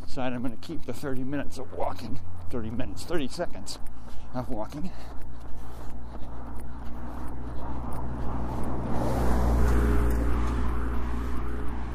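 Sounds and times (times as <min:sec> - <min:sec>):
speech: 0:00.2 - 0:05.2
heavy truck rumbling past with deep engine drone: 0:07.8 - 0:11.9.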